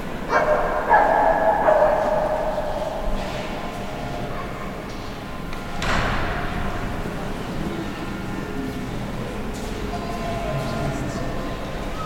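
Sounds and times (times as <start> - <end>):
reverberant murmur of voices inside a cathedral: 0.0 - 12.0.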